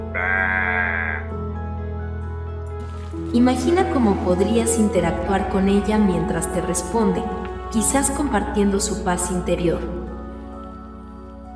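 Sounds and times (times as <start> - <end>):
sheep bleating: 0.0 - 1.4
speech: 3.3 - 10.0.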